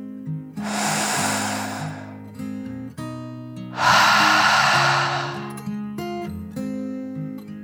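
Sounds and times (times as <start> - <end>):
deep breaths in and out during a children's meditation: 0.6 - 2.3, 3.8 - 5.7.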